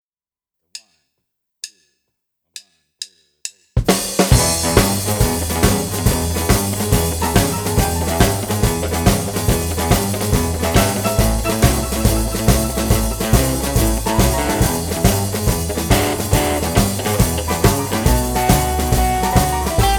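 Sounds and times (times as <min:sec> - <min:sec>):
harmonica playing blues boogie in E: 0:04.4 - 0:19.9.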